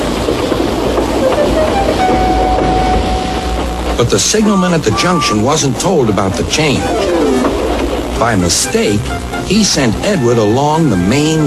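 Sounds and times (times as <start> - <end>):
steam train setting off and rumbling along rails: 0.0 - 11.4
thin high whistle-like tone: 1.4 - 3.6, 4.8 - 5.6
speech: 4.0 - 7.2, 8.2 - 11.4.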